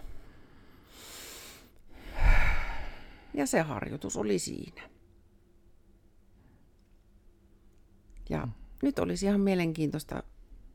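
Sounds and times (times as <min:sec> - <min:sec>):
deep breath, inhale and exhale: 0:00.0 - 0:03.4
speech: 0:03.4 - 0:05.0, 0:08.3 - 0:10.3.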